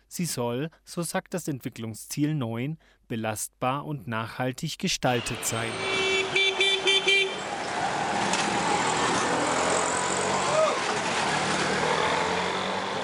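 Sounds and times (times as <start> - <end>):
speech: 0.1 - 6.0
short car horn honks: 5.2 - 7.4
busy city traffic of passing vehicles: 5.2 - 13.0.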